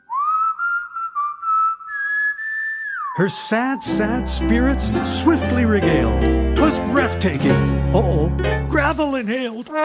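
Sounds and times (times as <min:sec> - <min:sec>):
prospector whistling a short melodic phrase while working with a gold pan: 0:00.0 - 0:05.7
speech: 0:03.2 - 0:09.8.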